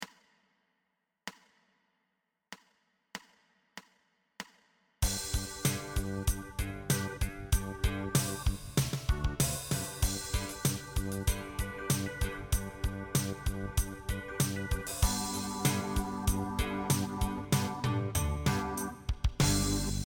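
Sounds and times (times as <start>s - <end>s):
improvised music: 5.0s - 20.0s.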